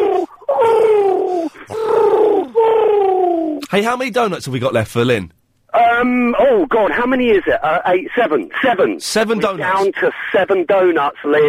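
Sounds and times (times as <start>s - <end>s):
man imitating pigeon cooing: 0.0s - 3.6s
speech: 3.7s - 11.4s.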